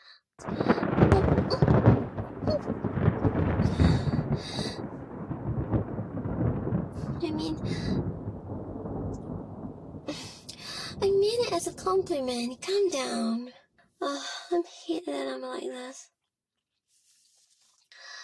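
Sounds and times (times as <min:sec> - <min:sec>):
speech: 0:00.4 - 0:01.6, 0:11.8 - 0:16.2
loud roll of thunder rumbling: 0:00.4 - 0:13.4.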